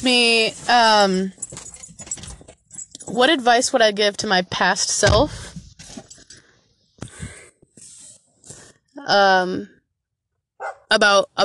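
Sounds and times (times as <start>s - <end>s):
speech: 0.0s - 1.4s, 3.1s - 5.5s, 9.0s - 9.8s, 10.9s - 11.4s
dog barking: 10.6s - 10.9s.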